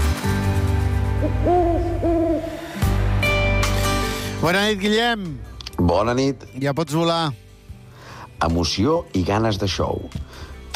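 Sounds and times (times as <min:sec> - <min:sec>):
music: 0:00.0 - 0:10.7
speech: 0:01.2 - 0:02.5, 0:04.4 - 0:07.4, 0:08.4 - 0:10.5
owl hooting: 0:01.2 - 0:02.6.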